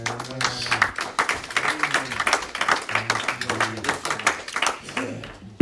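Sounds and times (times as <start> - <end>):
audience hand clapping: 0.0 - 5.5.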